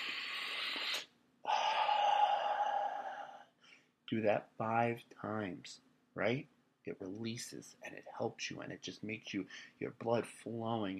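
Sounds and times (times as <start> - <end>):
deep breathing close to the mic: 0.0 - 4.0
speech: 4.1 - 10.9.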